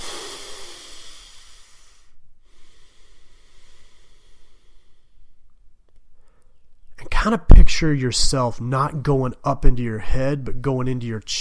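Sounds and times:
deep slow breathing into microphone: 0.0 - 5.4
speech: 7.2 - 11.3.

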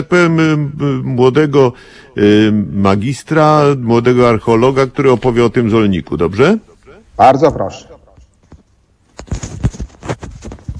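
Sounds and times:
speech: 0.0 - 8.0
knocks and scrapes against the microphone: 8.1 - 10.7
phone passed from hand to hand, bumps and rustling: 8.4 - 10.7.

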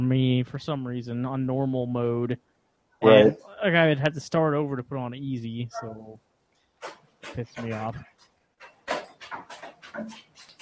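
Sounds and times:
speech: 0.0 - 8.1, 10.0 - 10.3
dogs' paws scuffling down stairs: 6.8 - 10.5.

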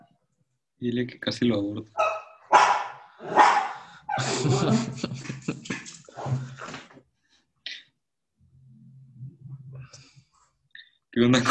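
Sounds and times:
speech: 0.8 - 2.0, 4.2 - 5.3, 11.2 - 11.4
dog barking: 2.0 - 3.9
laughter: 4.1 - 6.8.

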